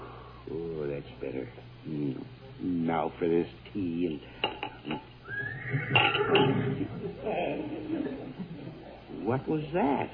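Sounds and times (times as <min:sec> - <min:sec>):
speech: 0:00.5 - 0:08.3, 0:09.2 - 0:10.1
horse neighing: 0:05.2 - 0:07.6
laughter: 0:06.2 - 0:09.2.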